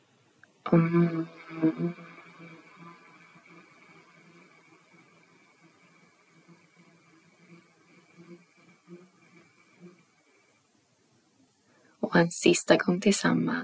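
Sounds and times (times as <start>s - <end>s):
speech: 0.7s - 2.5s, 12.2s - 13.6s
person humming mm on the exhale during a breathing exercise: 0.7s - 4.3s.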